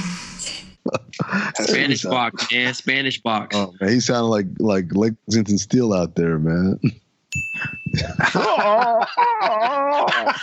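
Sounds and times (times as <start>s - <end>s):
laughter: 0.9s - 2.6s, 7.9s - 10.4s
speech: 1.4s - 7.0s, 7.6s - 10.4s
sharp ringing ding: 7.3s - 8.2s.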